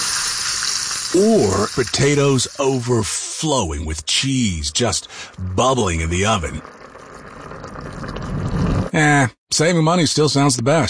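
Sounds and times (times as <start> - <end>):
fresh onions sizzling as they hit a hot wok: 0.0 - 1.9
speech: 1.1 - 6.8, 9.0 - 10.8.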